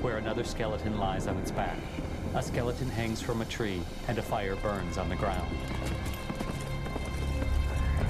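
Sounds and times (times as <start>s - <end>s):
low rumble: 0.0s - 4.3s
speech: 0.0s - 5.9s
hooves of horses ridden across a wide dusty plain: 2.3s - 8.0s.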